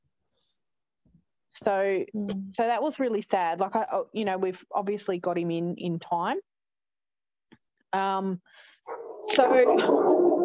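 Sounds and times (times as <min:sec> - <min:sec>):
speech: 0:01.6 - 0:06.5, 0:07.9 - 0:10.4
dogs barking: 0:08.9 - 0:10.4.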